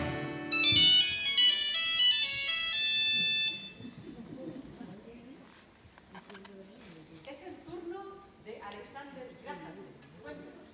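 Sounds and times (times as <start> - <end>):
loud bright electronic telephone ring: 0.5 - 3.9.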